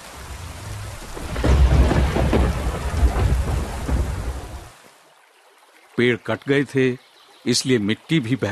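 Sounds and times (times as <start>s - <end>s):
deep rolling thunder: 0.0s - 4.8s
heavy downpour in the mountains: 0.0s - 4.9s
speech: 6.0s - 8.5s.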